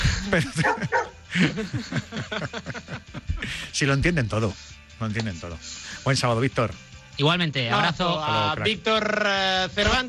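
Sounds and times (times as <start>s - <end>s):
laughter: 0.0s - 3.7s
speech: 0.3s - 10.0s
small dog barking in yappy bursts: 0.6s - 1.2s.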